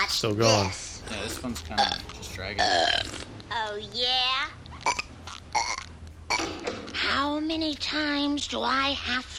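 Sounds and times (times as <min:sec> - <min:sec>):
speech: 0:00.2 - 0:05.0, 0:07.1 - 0:09.3
loud drawn-out raspy burp: 0:01.7 - 0:03.3, 0:04.8 - 0:06.6.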